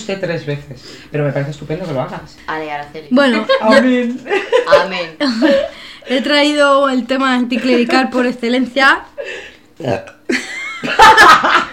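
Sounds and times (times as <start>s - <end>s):
speech: 0.0s - 11.7s
laughter: 3.4s - 6.0s, 10.3s - 11.7s
burp: 9.8s - 10.3s.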